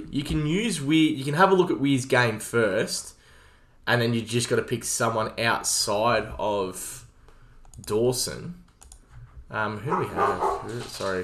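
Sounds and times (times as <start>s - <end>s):
speech: 0.0s - 3.2s, 3.8s - 7.0s, 7.8s - 8.6s, 9.5s - 11.2s
dogs barking in short bursts: 9.9s - 10.8s.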